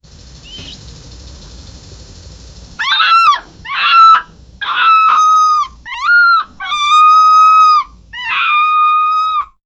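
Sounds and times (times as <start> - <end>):
foxes screaming: 2.8 - 9.6.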